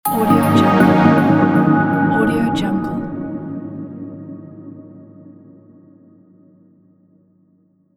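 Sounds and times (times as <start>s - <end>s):
soft logo jingle: 0.1s - 3.5s.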